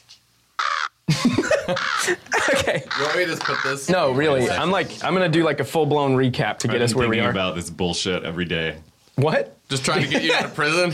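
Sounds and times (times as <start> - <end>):
crow cawing harshly: 0.6 - 1.0, 1.7 - 2.2, 2.8 - 4.0
laughter: 1.1 - 4.8, 9.7 - 10.9
speech: 1.1 - 10.9.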